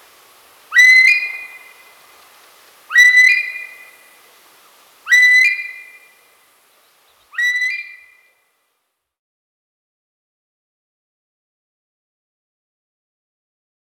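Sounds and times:
female Himalayan monal whistled calls: 0.7s - 2.0s, 2.9s - 4.2s, 5.0s - 6.2s, 7.1s - 8.3s.

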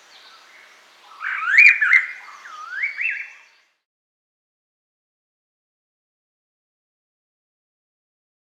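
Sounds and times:
silver-eared laughingthrush warbled whistles: 1.1s - 3.5s.

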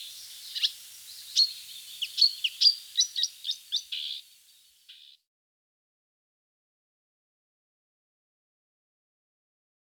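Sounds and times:
marsh warbler song of scratchy chirps and buzzy notes: 0.0s - 5.2s.

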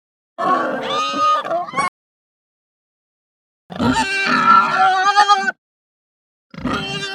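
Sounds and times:
Hampshire pig making high distressed grunts and squeals: 0.4s - 1.9s, 3.7s - 5.6s, 6.5s - 7.1s.

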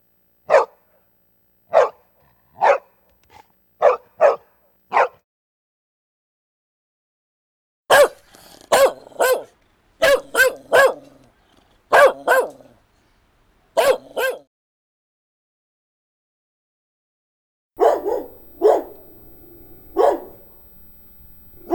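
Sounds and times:
medium-sized dog barking: 0.5s - 0.9s, 1.7s - 5.2s, 7.9s - 12.9s, 13.7s - 14.5s, 17.8s - 20.6s.

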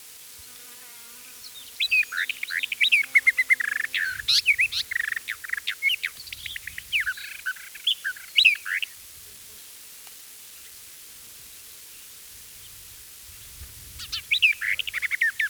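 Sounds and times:
Eastern Orphean warbler song: 1.3s - 9.0s, 13.4s - 15.4s.

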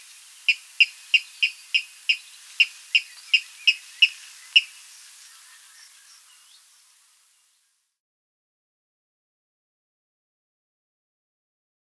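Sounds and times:
water rail calling with sharp high piping notes: 0.0s - 7.5s.

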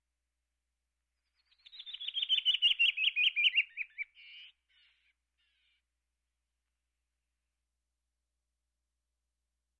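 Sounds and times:
canyon wren song: 1.1s - 5.9s.

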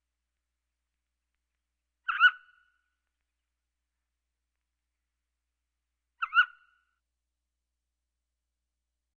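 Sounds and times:
mountain quail calling: 2.0s - 2.7s, 6.2s - 6.8s.

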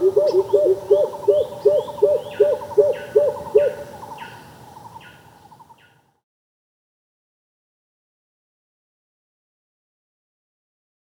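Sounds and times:
greater coucal hooting: 0.0s - 3.9s
higher chirping birds: 0.0s - 6.0s.

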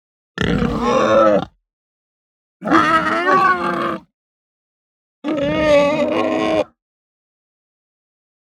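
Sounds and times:
hungry Hampshire pig giving harsh squealing grunts: 0.4s - 1.6s, 2.6s - 4.1s, 5.2s - 6.8s.

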